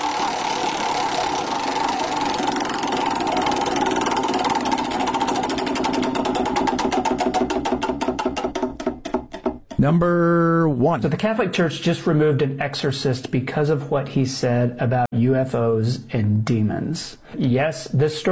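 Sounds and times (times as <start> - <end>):
prize wheel spinning with pointer ticking: 0.0 - 10.0
speech: 9.8 - 18.2.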